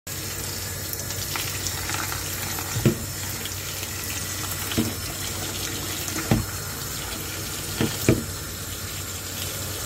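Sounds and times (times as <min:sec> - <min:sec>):
washing fruit under tap water: 0:00.1 - 0:09.8.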